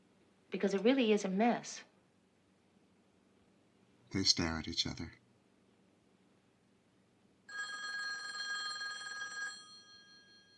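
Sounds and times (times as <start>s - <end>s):
faint hum: 0.0s - 10.5s
speech: 0.5s - 1.9s, 4.1s - 5.2s
telephone ringing with a bright electronic trill: 7.5s - 10.5s.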